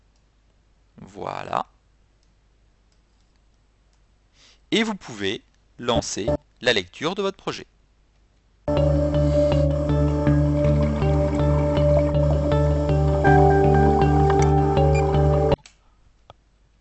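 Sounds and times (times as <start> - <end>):
speech: 1.1 - 1.7, 4.7 - 7.7
instrumental film soundtrack made in GarageBand playing as background music: 5.9 - 6.4, 8.7 - 15.6.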